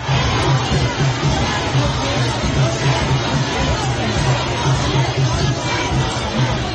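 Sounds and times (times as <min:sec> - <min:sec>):
protest crowd shouting and clamouring against police in London: 0:00.0 - 0:06.7.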